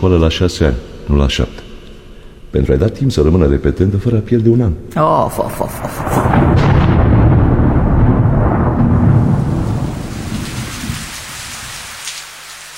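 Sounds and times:
speech: 0.0s - 1.7s, 2.5s - 6.8s
thunder rumbling: 0.5s - 12.0s
heavy rain: 5.3s - 12.7s.

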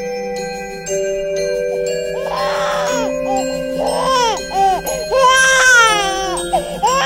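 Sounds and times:
soft steady musical tone: 0.0s - 7.0s
baby crying: 2.2s - 7.0s.

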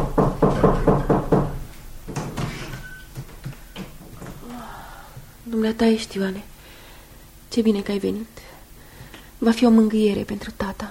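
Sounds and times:
loud knocking on a door: 0.0s - 2.6s
quiet scattered thuds and clatters: 0.0s - 4.4s
speech: 5.6s - 6.5s, 7.5s - 8.5s, 9.4s - 10.8s.

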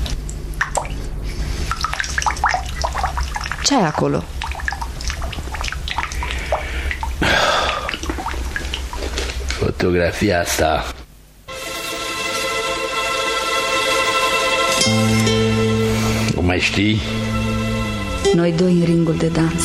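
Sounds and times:
dripping water faucet: 0.0s - 9.6s
low hum: 0.0s - 19.6s
speech: 3.6s - 4.4s, 9.8s - 11.0s, 14.9s - 15.7s, 16.3s - 17.4s, 18.2s - 19.6s.

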